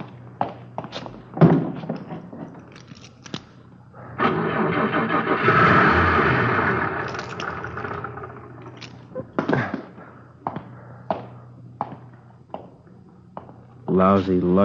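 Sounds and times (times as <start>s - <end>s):
car engine cranking and starting: 4.1s - 8.9s
speech: 14.0s - 14.6s.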